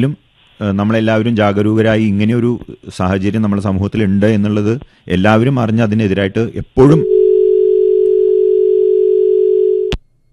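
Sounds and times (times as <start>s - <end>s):
speech: 0.0s - 7.2s
telephone line tone after a call cut off: 7.0s - 10.0s.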